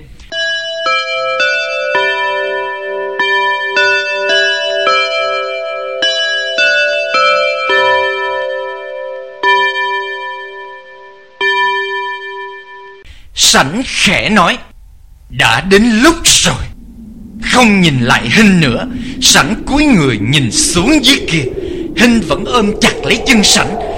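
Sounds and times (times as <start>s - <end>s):
alarm clock bell chiming: 0.3s - 13.0s
speech: 13.5s - 14.7s, 15.3s - 16.7s, 17.5s - 23.9s.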